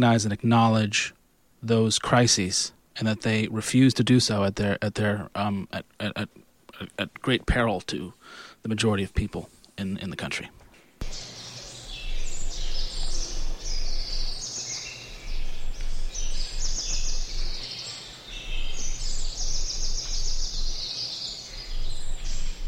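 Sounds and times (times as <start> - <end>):
speech: 0.0 - 11.3
faint low hum: 0.0 - 22.6
birdsong chorus in a forest: 11.0 - 22.6.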